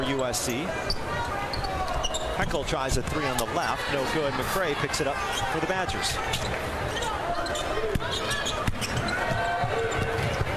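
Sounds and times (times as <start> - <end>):
dense steady crowd murmur at a women's basketball game: 0.0 - 10.5
speech: 0.2 - 1.3, 2.4 - 9.5
basketball dribbled on the court during a women's basketball game: 7.9 - 10.5.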